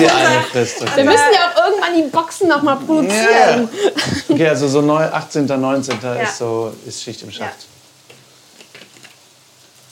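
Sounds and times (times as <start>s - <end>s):
laughter: 0.0s - 1.5s, 3.1s - 4.8s
speech: 0.0s - 7.8s
sesame seeds toasting in a frying pan: 0.0s - 9.9s
sesame seeds crackling and popping in a frying pan: 7.7s - 9.9s.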